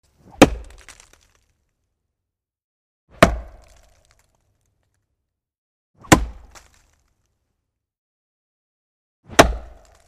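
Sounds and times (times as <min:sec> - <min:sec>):
battle axe hitting a tree: 0:00.2 - 0:01.5, 0:03.1 - 0:04.4, 0:06.0 - 0:07.3, 0:09.3 - 0:10.0.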